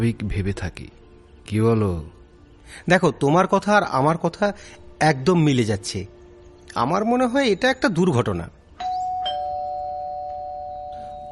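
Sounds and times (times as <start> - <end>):
speech: 0.0 - 8.6
doorbell ding-dong chime: 8.8 - 11.3.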